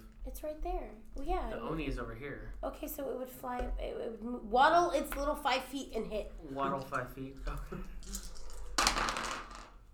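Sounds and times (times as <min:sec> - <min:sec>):
speech: 0:00.4 - 0:08.3
dice clattering across a hard tabletop: 0:08.0 - 0:09.8.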